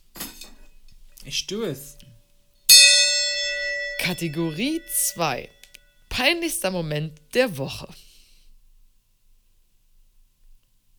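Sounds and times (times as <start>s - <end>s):
speech: 1.2s - 2.1s, 4.0s - 5.6s, 6.2s - 8.0s
metallic gong strike with shimmering overtones: 2.7s - 5.7s.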